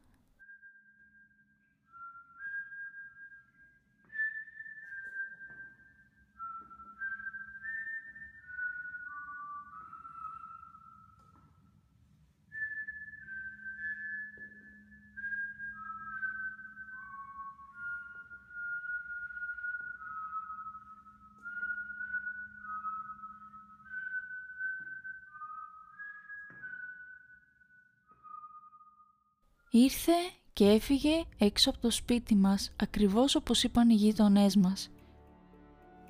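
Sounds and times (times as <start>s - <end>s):
person whistling a melody: 0.4s - 11.8s, 12.5s - 29.4s
speech: 29.7s - 35.0s.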